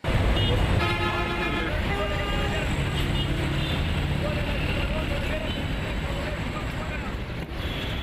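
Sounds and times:
dense city traffic rumble in Peshawar: 0.0s - 8.0s
car horns honking: 0.3s - 5.7s, 7.5s - 8.0s.

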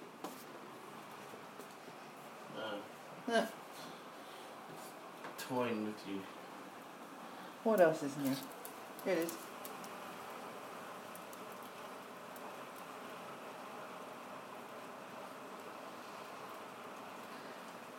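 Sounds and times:
speech: 2.6s - 3.9s, 5.5s - 6.4s, 7.6s - 9.4s
hail pattering and ticking on hard surfaces: 5.3s - 17.9s.

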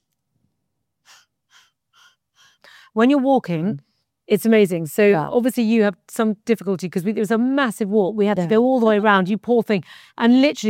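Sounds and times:
short sharp inhalations during a breathing exercise: 1.0s - 3.0s
speech: 3.0s - 10.6s.

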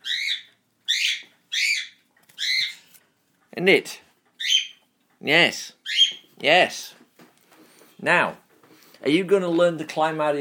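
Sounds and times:
pet baby bird squawking in its cage: 0.0s - 2.9s, 4.4s - 4.8s, 5.8s - 6.3s
speech: 3.6s - 4.0s, 5.2s - 5.8s, 6.4s - 7.0s, 8.0s - 8.4s, 9.0s - 10.4s.

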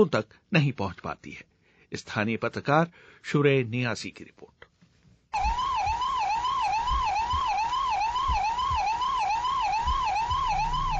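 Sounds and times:
speech: 0.0s - 4.6s
ambulance siren wailing: 5.4s - 10.9s.

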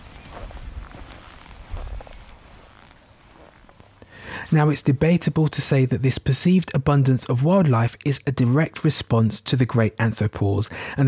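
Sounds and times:
low rustling noise: 0.0s - 5.7s
yellowhammer singing from the top of a hawthorn bush: 0.1s - 4.0s
speech: 4.5s - 11.0s.

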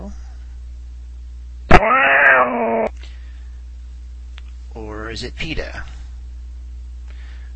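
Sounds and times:
cat yowling meow: 1.7s - 2.9s
speech: 5.2s - 6.0s.

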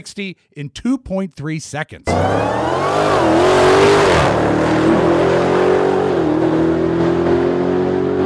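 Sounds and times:
speech: 0.0s - 4.6s
Dodge Demon engine roaring accelerating hard from a dead stop: 2.1s - 8.2s.

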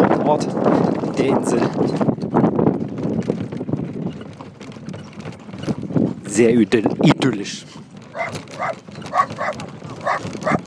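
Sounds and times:
moving horse-drawn carriage rumbling on the coastal road on Inishmore: 0.0s - 10.6s
speech: 0.3s - 2.6s, 6.4s - 8.7s
dog barking as a passenger in a horse-drawn carriage: 8.2s - 10.6s.

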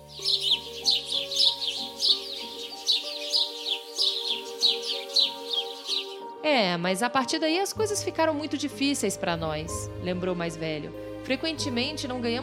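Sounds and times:
songbirds chirping: 0.0s - 6.7s
soft sustained tonal background: 0.0s - 6.8s
speech: 6.5s - 12.4s.

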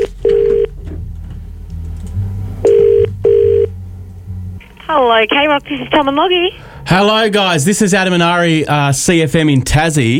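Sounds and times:
steady electronic telephone ringback tone on an outgoing call: 0.0s - 0.7s, 2.6s - 3.7s
speech: 5.2s - 10.1s.

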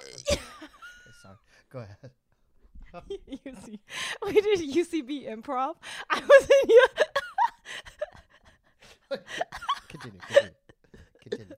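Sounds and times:
person burping: 0.0s - 0.8s
speech: 1.7s - 2.2s, 2.9s - 7.1s.

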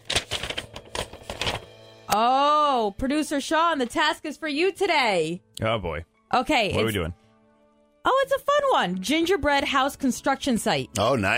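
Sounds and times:
paper slip from an advent calendar rustling and crinkling: 0.0s - 1.8s
speech: 2.1s - 7.2s, 8.0s - 11.3s.

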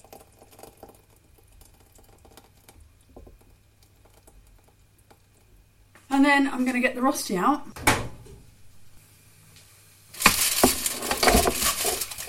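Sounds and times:
thickened sauce pouring into a jug: 0.0s - 5.4s, 10.2s - 12.2s
speech: 6.2s - 7.9s.

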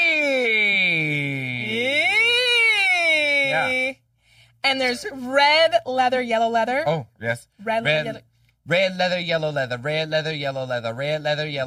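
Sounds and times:
person humming a vocal siren warm-up exercise: 0.0s - 3.9s
speech: 4.6s - 11.6s.

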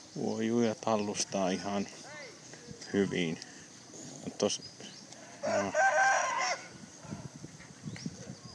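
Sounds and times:
steady outdoor hum: 0.0s - 8.5s
speech: 0.2s - 2.2s, 2.9s - 3.5s, 4.2s - 4.8s
rooster crowing: 5.2s - 7.3s.

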